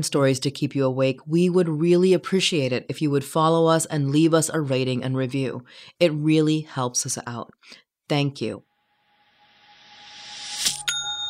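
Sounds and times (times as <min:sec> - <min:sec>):
speech: 0:00.0 - 0:08.7
bright ding of an online shop sale notification: 0:10.6 - 0:11.2.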